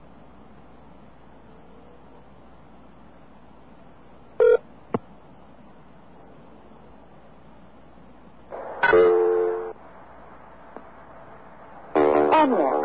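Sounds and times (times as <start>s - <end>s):
telephone tones from a long-distance operator service during a collect call: 4.4s - 4.6s, 8.8s - 9.7s
faint telephone line hiss: 8.5s - 12.7s.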